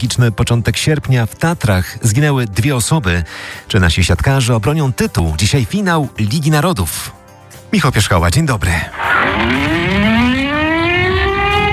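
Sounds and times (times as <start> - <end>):
speech: 0.0 - 10.2
civil defense sirens wailing over Warsaw for the Warsaw Uprising anniversary: 9.0 - 11.7.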